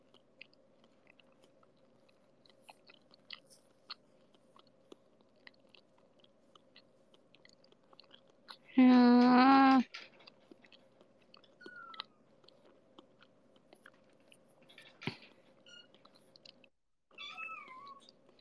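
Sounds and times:
faint chewing: 0.0s - 18.3s
cat meowing: 17.1s - 18.1s.

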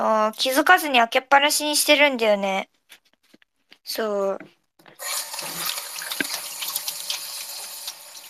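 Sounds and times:
speech: 0.0s - 2.8s, 3.9s - 5.6s
running tap water splashing into a sink: 5.0s - 8.2s.

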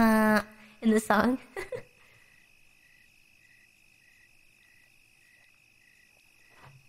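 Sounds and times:
speech: 0.0s - 1.8s
chorus of crickets chirping: 0.0s - 6.8s
soft bump of low noise: 6.4s - 6.8s.

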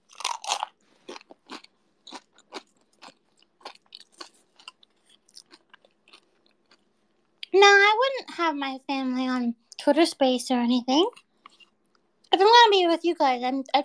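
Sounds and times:
crunchy food being chewed: 0.0s - 7.5s, 11.1s - 12.3s
speech: 7.6s - 11.2s, 12.4s - 13.8s.

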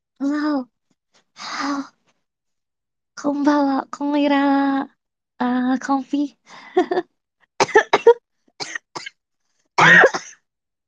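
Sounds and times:
speech: 3.2s - 7.1s
person coughing in short harsh bursts: 7.6s - 9.2s, 9.8s - 10.4s.

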